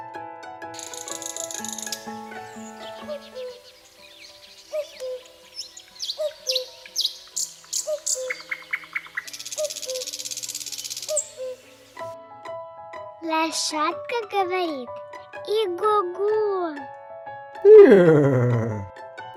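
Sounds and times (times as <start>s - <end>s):
cuckoo calling: 0.8s - 12.2s
quick chirping bird notes: 0.8s - 12.2s
speech: 13.7s - 16.4s, 17.8s - 18.8s.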